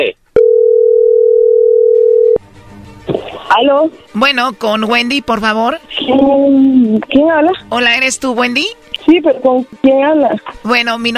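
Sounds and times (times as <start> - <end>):
speech: 0.0 - 0.2, 3.6 - 11.1
telephone dial tone: 0.4 - 2.4.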